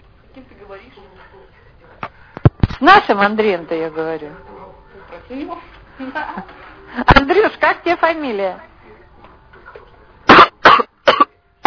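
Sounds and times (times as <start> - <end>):
faint hum: 0.0 - 11.6
speech: 0.4 - 8.7
person coughing during a phone conversation: 10.3 - 11.6.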